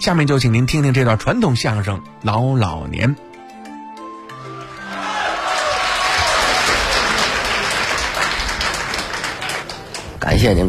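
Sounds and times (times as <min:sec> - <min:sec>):
speech: 0:00.0 - 0:03.3, 0:10.3 - 0:10.6
audience applause at a Chinese crosstalk performance: 0:04.3 - 0:10.2.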